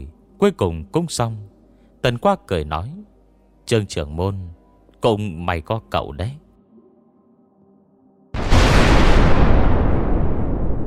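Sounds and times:
speech: 0:00.4 - 0:03.1, 0:03.7 - 0:06.4
dynamite blast breaking open the back of a Buddha statue: 0:08.4 - 0:10.8.

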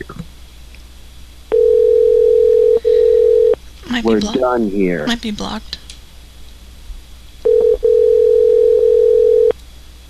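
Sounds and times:
telephone ringing tone on an outgoing call: 0:01.5 - 0:03.6, 0:07.5 - 0:09.5
speech: 0:04.0 - 0:05.8.

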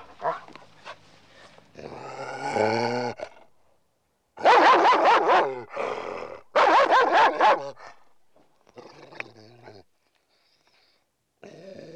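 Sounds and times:
dog harsh barks: 0:00.0 - 0:00.6, 0:04.4 - 0:05.6, 0:06.6 - 0:07.8.

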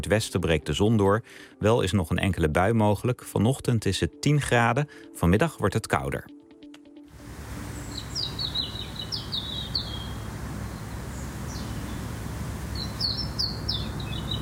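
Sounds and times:
speech: 0:00.0 - 0:06.4
steady low rumble of background noise: 0:07.2 - 0:14.4
European robin singing in a garden: 0:07.3 - 0:14.4.

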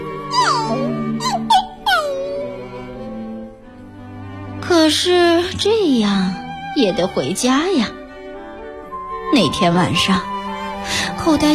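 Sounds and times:
dogs whimpering sadly: 0:00.3 - 0:02.8
speech: 0:04.9 - 0:08.0, 0:09.4 - 0:11.5.

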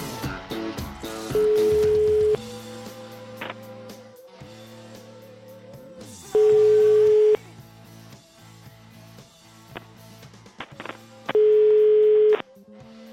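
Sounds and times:
telephone ringback tone on an unanswered call: 0:01.3 - 0:02.4, 0:06.4 - 0:07.4, 0:11.4 - 0:12.4.

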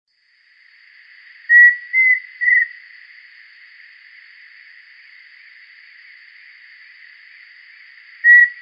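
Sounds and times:
faint steady hiss: 0:00.1 - 0:08.6
Pheasant cuckoo Dromococcyx phasianellus whistling: 0:01.5 - 0:02.7, 0:08.2 - 0:08.6.

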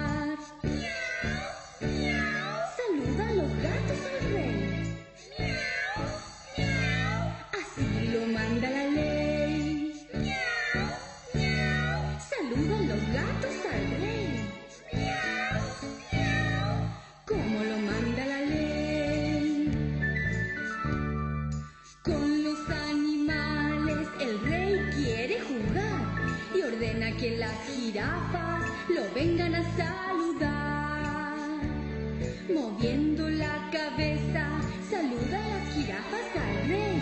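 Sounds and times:
children's song music: 0:00.0 - 0:37.0
singing voices imitating cats meowing in a children's song: 0:00.7 - 0:03.1, 0:05.3 - 0:07.6, 0:08.4 - 0:12.5, 0:14.8 - 0:19.6.

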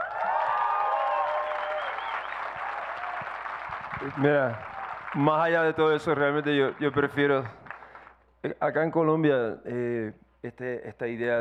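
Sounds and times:
audience applauding a musician at a festival panel talk in Colombia: 0:00.0 - 0:08.2
speech: 0:04.0 - 0:07.6, 0:08.4 - 0:11.3.

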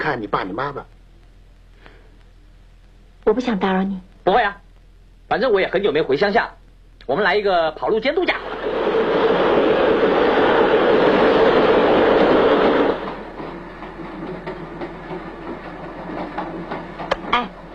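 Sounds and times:
speech: 0:00.0 - 0:01.0, 0:03.2 - 0:04.6, 0:05.3 - 0:08.6
train running on rails: 0:08.2 - 0:17.7
train wheels clicking and clacking: 0:08.8 - 0:17.7.

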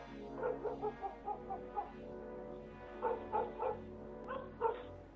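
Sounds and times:
stray dog barking fiercely with hackles raised: 0:00.4 - 0:02.0, 0:03.0 - 0:05.0.

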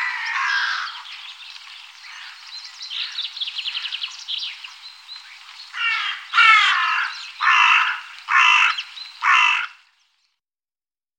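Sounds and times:
carrion crow cawing: 0:00.0 - 0:01.1, 0:02.0 - 0:04.1, 0:05.7 - 0:09.9.

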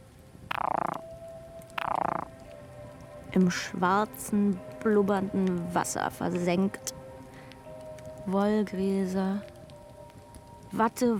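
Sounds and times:
faint steady tone: 0:00.0 - 0:11.1
low noise: 0:00.0 - 0:11.1
frog croaking: 0:00.5 - 0:02.4
speech: 0:03.3 - 0:07.0, 0:08.2 - 0:09.5, 0:10.7 - 0:11.1.

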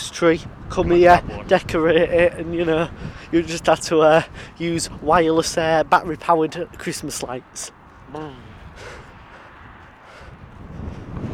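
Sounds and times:
strong wind buffeting the microphone outdoors: 0:00.0 - 0:11.3
speech: 0:00.2 - 0:08.9.

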